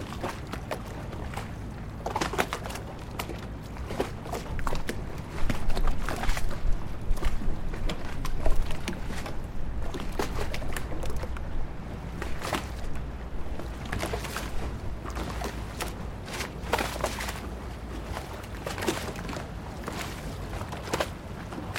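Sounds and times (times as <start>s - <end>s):
water splashing against moored gondolas on the Grand Canal in Venice: 0.0s - 21.7s.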